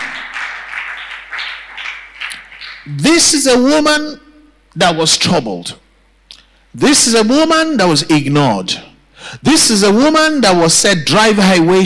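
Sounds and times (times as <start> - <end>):
congregation clapping hands in dense applause: 0.0 - 3.0
speech: 2.9 - 4.2, 4.8 - 5.8, 6.8 - 11.8.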